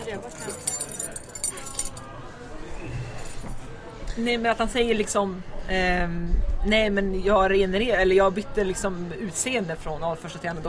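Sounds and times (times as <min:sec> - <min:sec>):
bunch of keys jangling: 0:00.0 - 0:02.1
speech: 0:04.2 - 0:10.6.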